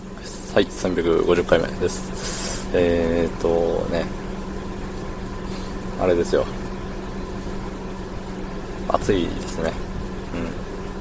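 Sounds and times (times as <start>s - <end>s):
car air conditioning blowing: 0.0s - 10.9s
car engine idling heard from inside the cabin: 0.0s - 10.9s
speech: 0.6s - 4.2s, 6.0s - 6.6s, 9.0s - 9.8s, 10.4s - 10.6s.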